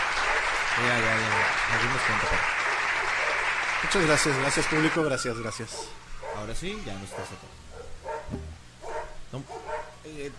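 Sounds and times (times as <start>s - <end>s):
speech: 0.8s - 2.6s, 3.8s - 8.4s, 9.3s - 10.3s
several small guard dogs barking: 1.2s - 3.6s, 5.6s - 10.0s.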